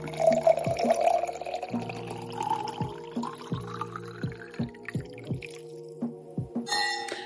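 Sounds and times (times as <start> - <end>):
drink being poured into a glass: 0.0 - 5.8
soft rhythmic thumps: 0.0 - 7.2.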